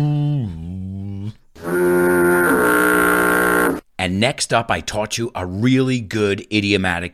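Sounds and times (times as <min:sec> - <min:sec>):
ship's foghorn blasts: 0:01.6 - 0:03.8
speech: 0:04.2 - 0:07.1.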